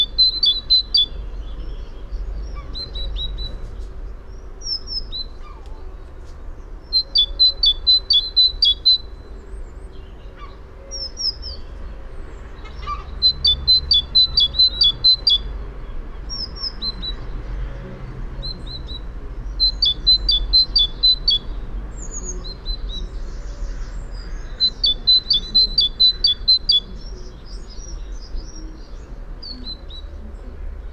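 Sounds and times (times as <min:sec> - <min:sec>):
great tit song: 0:00.0 - 0:03.4, 0:06.8 - 0:09.2, 0:12.4 - 0:17.5, 0:18.1 - 0:30.1
bird chirps: 0:00.0 - 0:05.8, 0:06.8 - 0:17.4, 0:18.4 - 0:30.9.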